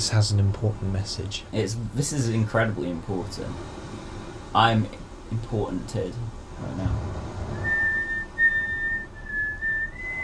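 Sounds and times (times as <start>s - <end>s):
speech: 0.0s - 3.8s, 4.5s - 7.2s
faint low rumble: 0.0s - 10.2s
man whistling a national anthem: 7.6s - 10.2s.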